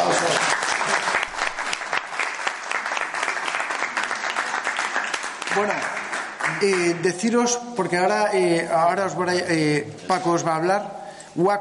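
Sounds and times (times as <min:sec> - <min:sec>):
crowd applause: 0:00.0 - 0:07.1
speech: 0:05.6 - 0:05.9, 0:06.6 - 0:11.5.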